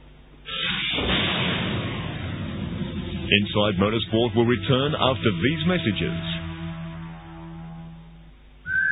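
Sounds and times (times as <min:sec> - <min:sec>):
low steady droning tones: 0:00.0 - 0:08.7
speech: 0:03.3 - 0:06.3
person whistling: 0:08.7 - 0:08.9.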